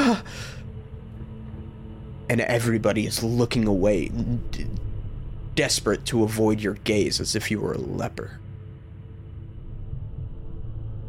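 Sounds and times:
prisoner gasping: 0.0 - 0.6
low steady rumble: 0.0 - 11.0
speech: 2.3 - 4.8, 5.6 - 8.4.

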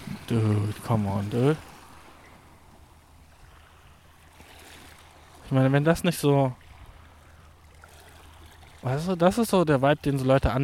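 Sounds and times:
flowing stream water: 0.0 - 10.6
speech: 0.3 - 1.7, 5.5 - 6.6, 8.8 - 10.6.

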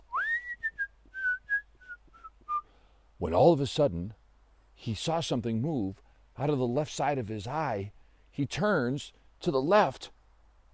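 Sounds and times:
person whistling a tune: 0.1 - 2.7
speech: 3.2 - 4.2, 4.8 - 10.2.

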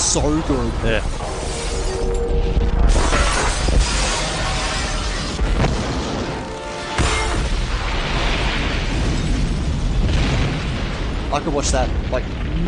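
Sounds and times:
speech: 0.1 - 1.4, 11.3 - 12.6
explosive booms in a film helicopter crash: 0.2 - 12.6
crashing debris in a film helicopter crash: 2.8 - 12.6
glass shattering in a film helicopter crash: 2.9 - 10.1.

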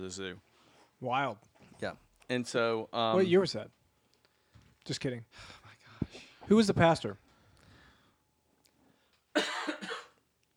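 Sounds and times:
speech: 0.0 - 3.8, 4.8 - 7.2
person coughing: 9.4 - 10.2.

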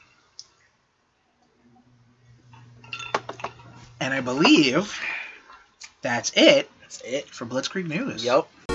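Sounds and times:
low hum: 0.0 - 8.6
glasses clinking together in a toast: 2.8 - 3.7
speech: 4.0 - 5.2, 6.0 - 8.6.

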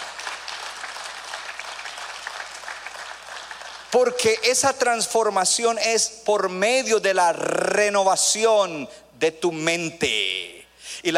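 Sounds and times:
crowd applauding, many hands clapping together: 0.0 - 4.2
speech: 3.9 - 11.1.

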